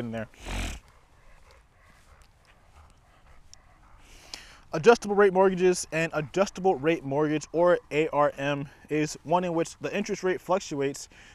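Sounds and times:
speech: 0.0 - 0.8, 4.7 - 11.3
tired dog making breathy huffs and faint whines: 0.4 - 4.2.

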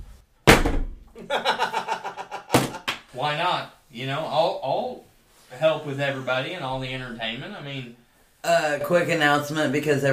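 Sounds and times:
phone being slammed down: 0.5 - 1.0
speech: 1.2 - 1.6, 3.2 - 10.1
laughter: 1.2 - 2.9.

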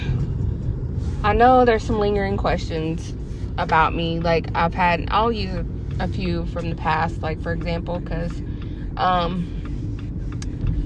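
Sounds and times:
low road rumble from inside a car being driven: 0.0 - 10.8
speech: 1.2 - 9.6.

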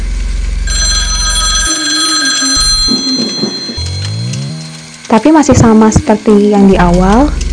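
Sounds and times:
telephone bell ringing with bright metallic tone: 0.7 - 5.0
speech: 5.1 - 7.4.

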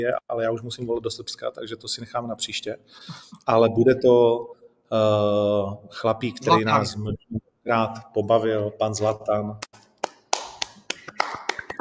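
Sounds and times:
speech: 0.0 - 9.9
hands clapping: 9.6 - 11.7.

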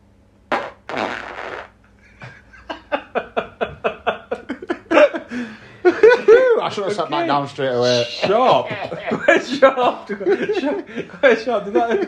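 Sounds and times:
fart: 0.5 - 1.8
laughter: 2.0 - 12.0
speech: 6.7 - 12.0.

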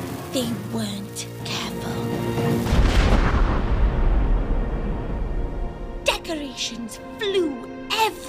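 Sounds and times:
speech: 0.3 - 2.0, 6.6 - 8.2
cannon blast: 2.6 - 5.8.

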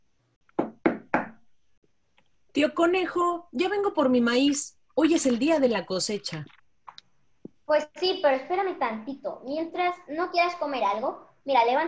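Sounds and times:
firm knocks on a door: 0.6 - 1.4
speech: 2.6 - 6.6, 7.7 - 11.8.

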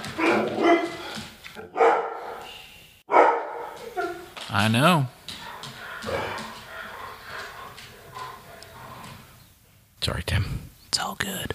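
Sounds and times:
dogs barking at the doors: 0.0 - 4.4, 5.1 - 9.4
speech: 4.5 - 5.2, 10.0 - 11.5.

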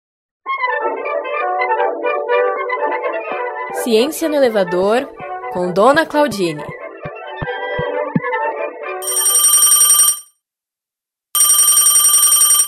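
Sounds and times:
music: 0.4 - 9.0
speech: 3.8 - 6.7
bright rapidly trilling electronic telephone ring: 9.0 - 10.4, 11.4 - 12.6.

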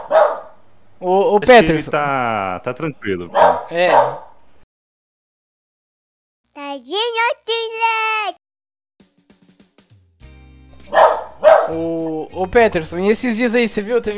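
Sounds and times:
dog giving drawn-out whiny yelps: 0.0 - 0.6, 3.3 - 4.4, 10.9 - 11.8
speech: 1.0 - 4.2, 6.8 - 8.4, 10.9 - 14.1.

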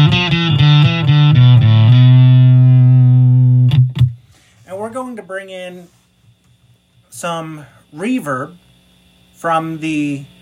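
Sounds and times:
heavily distorted electric guitar through a pedal with drive fully up: 0.0 - 4.2
speech: 5.4 - 6.0, 7.2 - 8.6, 9.4 - 10.3.

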